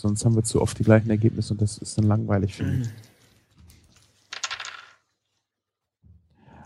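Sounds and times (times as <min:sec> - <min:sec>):
speech: 0:00.0 - 0:03.1
dice clattering and rolling on a hard surface: 0:04.1 - 0:05.1.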